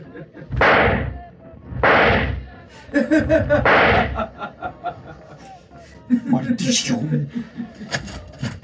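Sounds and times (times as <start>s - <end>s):
laughter: 0.0s - 1.4s, 2.4s - 8.6s
revolver shots: 0.5s - 2.6s, 3.6s - 4.2s
speech: 2.9s - 4.5s, 6.1s - 8.2s.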